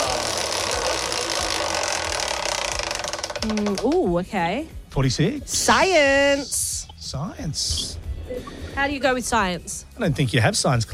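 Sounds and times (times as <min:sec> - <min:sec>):
category prize wheel pointer ratcheting over pegs: 0:00.0 - 0:03.8
speech: 0:03.4 - 0:10.9.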